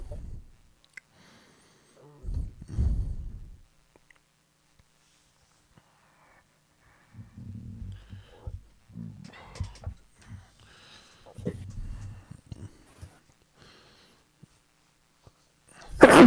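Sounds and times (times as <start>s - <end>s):
breathy vocal noises: 0.0s - 3.6s, 6.8s - 14.2s
person sneezing loudly: 15.8s - 16.2s.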